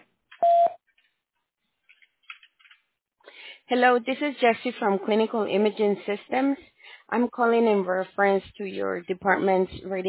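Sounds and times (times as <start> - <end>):
office desk-phone voicemail beep: 0.4 - 0.8
speech: 3.7 - 10.0.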